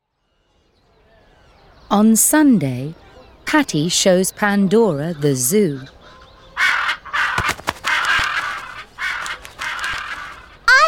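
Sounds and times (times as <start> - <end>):
speech: 1.9 - 6.0
crow cawing: 6.0 - 10.6
sharp clicks: 9.2 - 10.1.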